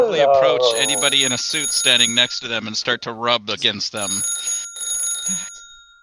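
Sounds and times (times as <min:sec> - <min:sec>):
speech: 0:00.1 - 0:04.6, 0:05.3 - 0:05.5
telephone bell ringing: 0:00.7 - 0:02.5, 0:04.0 - 0:06.0.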